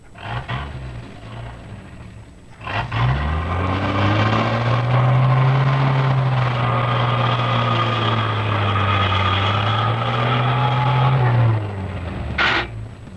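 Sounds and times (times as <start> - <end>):
heavy truck engine starting, idling and revving: 0.0 - 13.1.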